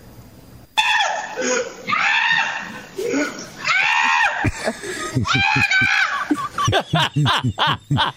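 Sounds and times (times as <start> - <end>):
goat screaming with human-like wails and bleating: 0.8 - 4.5, 5.2 - 6.3
laughter: 3.1 - 8.1.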